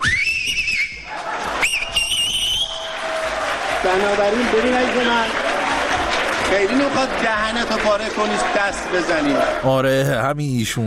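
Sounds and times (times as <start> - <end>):
audience member loud piercing finger whistle: 0.0 - 3.0
crowd noise: 0.6 - 10.3
speech: 3.9 - 5.4, 6.5 - 10.8.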